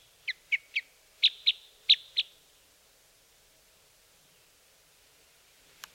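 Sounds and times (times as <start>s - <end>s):
Red crossbill sharp kip calls: 0.0s - 2.4s
faint click: 5.8s - 5.9s.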